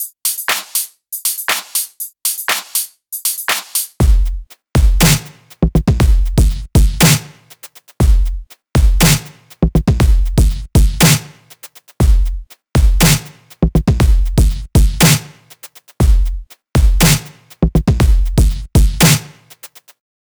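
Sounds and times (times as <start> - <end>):
rap beat: 3.5 - 19.7.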